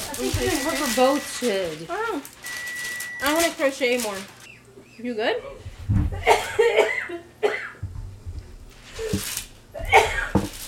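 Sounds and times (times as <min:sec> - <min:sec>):
speech: 0:00.2 - 0:02.4, 0:03.2 - 0:04.4, 0:05.0 - 0:07.3
person coughing into a shirt: 0:06.1 - 0:07.9, 0:09.7 - 0:10.5.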